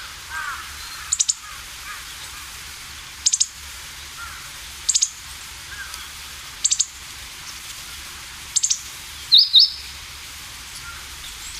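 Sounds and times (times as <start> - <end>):
faint lower bird calls: 0.0 - 2.6, 3.2 - 7.6, 8.5 - 10.0, 10.8 - 11.5
meadow bunting calling: 0.0 - 2.6, 3.2 - 7.0, 8.5 - 10.0
steady background hiss: 0.0 - 11.5.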